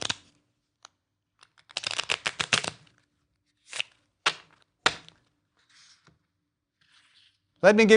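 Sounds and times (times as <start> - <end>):
deck of 52 playing cards riffle shuffled: 0.0 - 7.6
sharp snaps of playing card deck being squared: 1.4 - 2.8, 3.7 - 5.2
speech: 7.6 - 7.9.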